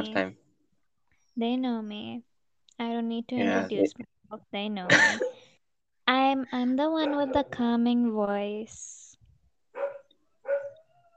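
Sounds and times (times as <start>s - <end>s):
speech: 0.0s - 0.4s, 1.4s - 5.4s, 6.1s - 9.0s
dog barking: 7.0s - 7.5s, 9.8s - 10.8s.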